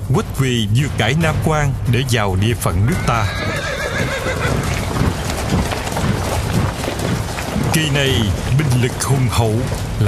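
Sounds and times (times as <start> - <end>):
horse hooves clopping: 0.0 - 10.0
speech: 0.1 - 4.7, 7.8 - 10.0
ridden horse whinnying with a rising wavering neigh: 2.8 - 8.4.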